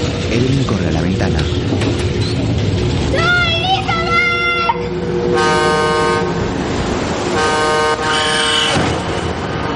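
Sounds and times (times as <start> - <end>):
truck engine and road noise rumble: 0.0 - 9.7
speech: 0.4 - 2.3
truck horn honking as the truck approaches on a road: 5.0 - 6.6, 7.3 - 9.7.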